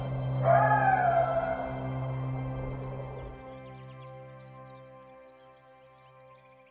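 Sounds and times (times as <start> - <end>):
coyotes howling in the distance: 0.0 - 3.7.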